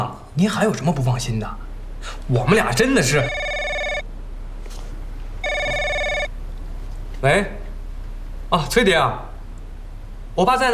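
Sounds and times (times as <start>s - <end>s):
speech: 0.4s - 3.5s, 7.2s - 7.6s, 8.5s - 9.3s, 10.4s - 10.7s
telephone ringing with a bright electronic tone: 2.9s - 4.1s, 5.4s - 6.3s.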